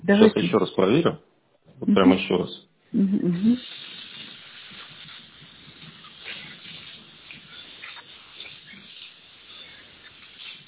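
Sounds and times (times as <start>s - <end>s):
speech: 0.1s - 3.8s
water running from a tap: 3.4s - 10.6s.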